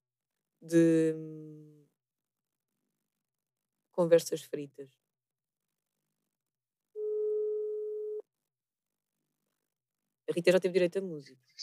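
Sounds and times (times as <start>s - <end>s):
speech: 0.6s - 1.4s, 4.0s - 5.0s, 10.3s - 11.6s
unanswered telephone call tone: 7.0s - 8.2s.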